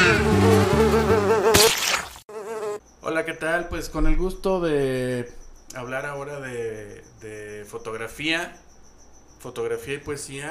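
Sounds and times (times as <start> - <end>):
housefly buzzing as it circles: 0.0 - 2.9
speech: 3.2 - 8.6, 9.4 - 10.4.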